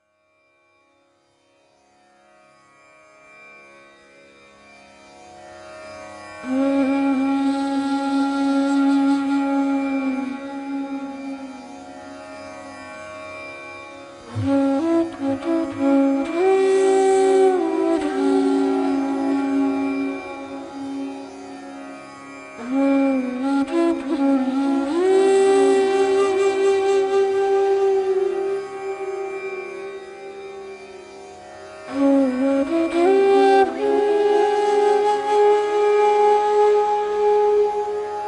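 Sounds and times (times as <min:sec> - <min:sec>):
hypnotic flute Arab music: 0:06.4 - 0:11.7, 0:14.3 - 0:21.8, 0:22.6 - 0:31.2, 0:31.8 - 0:38.2.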